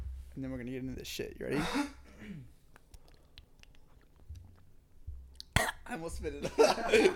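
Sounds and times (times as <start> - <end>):
speech: 0.4 - 2.6, 5.9 - 7.1
person sipping and swallowing water: 2.7 - 5.8
laughter: 6.4 - 7.1.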